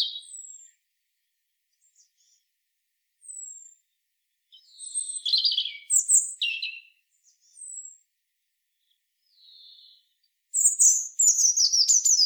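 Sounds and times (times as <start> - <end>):
European robin singing, Erithacus rubecula: 0.0 - 0.8, 3.2 - 3.9, 4.5 - 8.1, 8.7 - 12.2.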